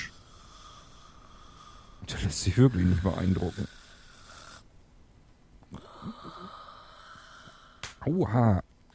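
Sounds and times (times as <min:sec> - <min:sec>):
person snoring with rough rattling snorts: 0:00.0 - 0:04.6, 0:05.7 - 0:07.8
steady hiss: 0:00.0 - 0:08.9
speech: 0:02.1 - 0:03.8, 0:08.1 - 0:08.6.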